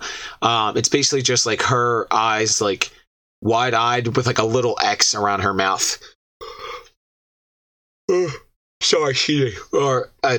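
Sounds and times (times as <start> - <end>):
speech: 0.4 - 6.1, 8.2 - 10.3
person yawning with breathy groaning bursts: 8.1 - 8.5.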